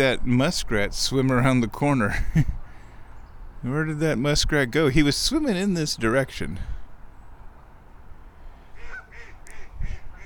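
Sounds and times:
speech: 0.0s - 2.6s, 3.6s - 6.7s
ducks quacking: 8.8s - 10.2s.

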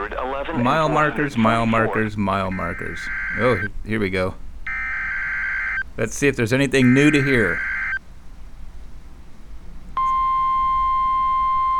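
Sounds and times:
low static hiss on a weather radio: 0.0s - 11.7s
speech: 0.1s - 4.4s, 6.0s - 7.7s
weather radio danger warning alert tone before a tornado warning: 0.6s - 3.7s, 6.7s - 8.0s.

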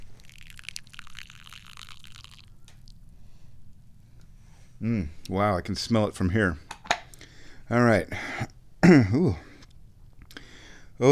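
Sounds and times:
thin stream of tea trickling into a small cup: 0.0s - 3.0s
speech: 4.8s - 6.6s, 7.7s - 9.4s.

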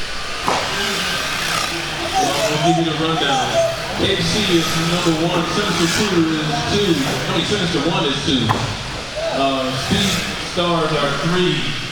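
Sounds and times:
race cars zipping past on a straightaway: 0.1s - 11.9s
laughter: 0.7s - 11.4s
speech: 2.6s - 8.8s, 9.4s - 11.8s.

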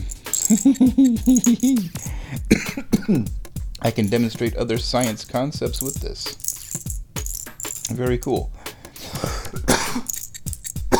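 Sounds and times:
speech: 0.6s - 6.4s, 7.9s - 8.6s
person coughing: 0.9s - 3.4s, 9.0s - 10.2s
throat clearing: 2.5s - 3.3s, 9.2s - 10.1s.

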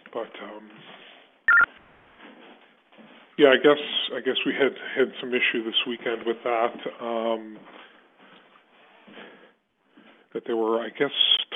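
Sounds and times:
speech: 0.1s - 1.6s, 3.4s - 7.9s, 10.3s - 11.4s
TTY tones on a phone line: 1.5s - 1.8s.

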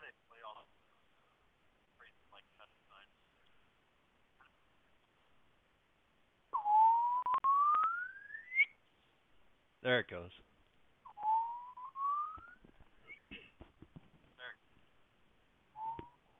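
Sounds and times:
loud pure electronic sine test tone sweeping upward in pitch: 6.6s - 8.7s, 11.1s - 13.2s
sharp clicks: 7.2s - 8.1s
speech: 9.8s - 10.5s.

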